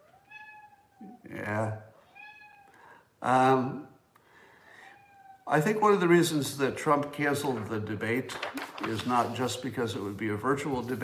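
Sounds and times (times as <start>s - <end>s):
cat meowing: 0.0s - 1.2s, 2.0s - 2.8s, 4.8s - 5.5s
speech: 1.0s - 1.9s, 3.2s - 3.9s, 5.5s - 11.0s.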